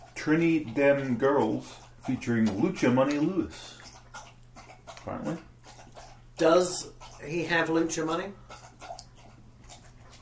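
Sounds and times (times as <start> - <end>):
dog eating noisily with wet smacking and crunching: 0.0 - 10.2
low steady hum: 0.0 - 10.2
speech: 0.2 - 3.8, 5.0 - 5.5, 6.4 - 8.5.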